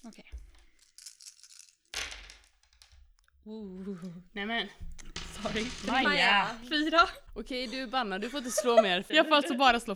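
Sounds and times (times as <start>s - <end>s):
speech: 0.0s - 0.4s, 3.4s - 9.9s
handful of dice rattling and tumbling across a hard table: 0.0s - 3.1s, 4.8s - 7.3s
laughter: 7.6s - 9.6s.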